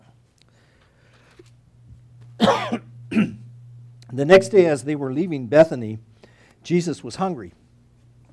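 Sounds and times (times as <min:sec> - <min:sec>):
steady low electrical hum: 0:00.0 - 0:08.3
person coughing harshly while reading a Bible passage aloud: 0:02.4 - 0:03.4
speech: 0:04.2 - 0:07.6.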